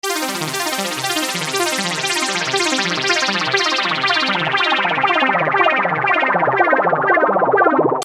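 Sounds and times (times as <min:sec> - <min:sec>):
techno synth arpeggio loop in C: 0:00.0 - 0:08.0.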